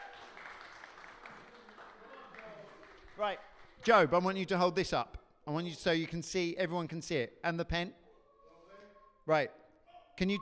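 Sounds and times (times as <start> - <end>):
audience applauding: 0.0 - 3.8
speech: 3.2 - 8.0, 9.3 - 9.6, 10.2 - 10.3.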